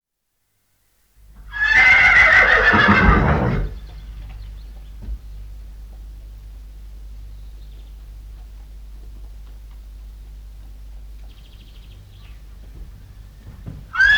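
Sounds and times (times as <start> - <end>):
horse giving a loud quavering whinny: 1.5 - 3.8, 14.0 - 14.1.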